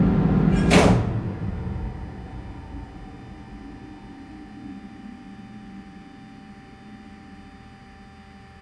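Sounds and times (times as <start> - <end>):
tram: 0.0 - 5.3.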